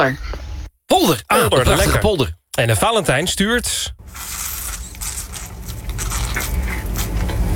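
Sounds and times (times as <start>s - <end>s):
speech: 0.0s - 0.4s, 1.0s - 4.6s
last juice squeezed from a carton into a glass: 4.0s - 7.3s.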